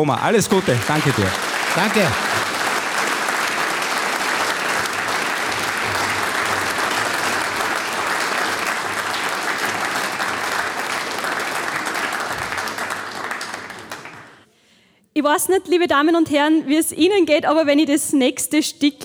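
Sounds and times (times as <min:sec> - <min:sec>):
speech: 0:00.0 - 0:02.5, 0:15.3 - 0:19.0
large audience applauding a new mayor: 0:00.0 - 0:14.5.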